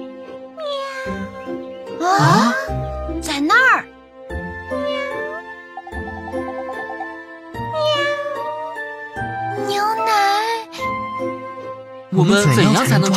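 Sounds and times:
frightened cat meowing: 0.6s - 1.4s, 4.7s - 5.5s, 7.6s - 8.8s
child speaking: 2.0s - 2.7s, 9.5s - 10.8s
speech: 12.2s - 13.1s.

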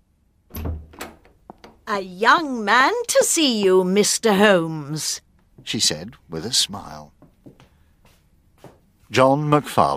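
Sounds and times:
door opening with a heavy low thud: 0.5s - 1.8s
sharp latch clicks: 0.5s - 1.8s
speech: 1.9s - 7.2s, 9.1s - 9.9s.

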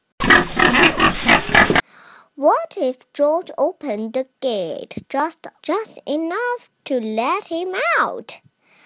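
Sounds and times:
pigs grunting and oinking: 0.2s - 1.8s
speech: 2.4s - 8.5s.

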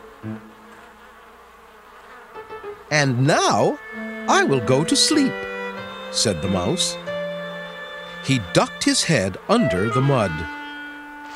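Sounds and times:
bees buzzing: 0.0s - 11.3s
speech: 2.9s - 5.4s, 6.1s - 7.0s, 8.2s - 10.6s.

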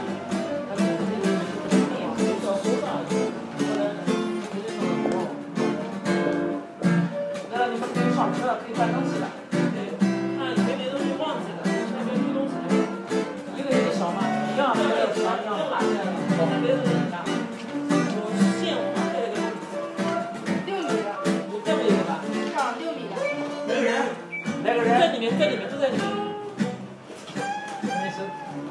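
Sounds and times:
person playing guitar in a music shop: 0.0s - 28.6s
voices talking in a music shop: 0.0s - 28.6s.

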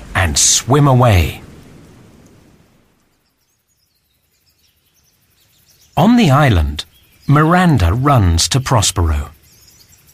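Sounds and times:
thunder rumbling: 0.0s - 3.1s
steady hiss of rain: 0.0s - 10.1s
speech: 0.3s - 1.4s, 6.0s - 9.4s.

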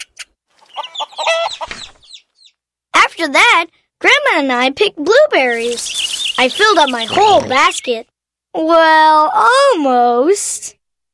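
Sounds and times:
hens clucking: 0.6s - 1.8s, 5.6s - 7.9s
speech: 3.2s - 10.8s.

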